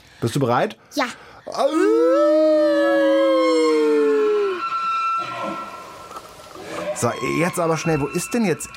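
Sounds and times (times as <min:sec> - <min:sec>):
speech: 0:00.2 - 0:03.3, 0:07.0 - 0:08.7
people imitating a moose call: 0:01.5 - 0:05.7.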